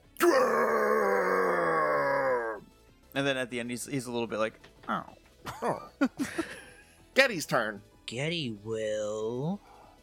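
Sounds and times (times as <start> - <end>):
person roaring with their voice: 0.2 - 2.6
speech: 3.2 - 6.6, 7.2 - 9.7.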